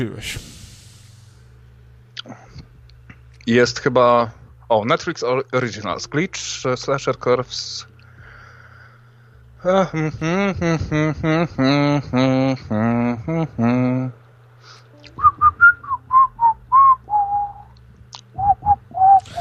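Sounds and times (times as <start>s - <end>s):
speech: 0.0s - 0.5s, 3.5s - 7.9s, 9.6s - 14.2s
person whistling a tune: 15.1s - 17.7s, 18.4s - 19.3s.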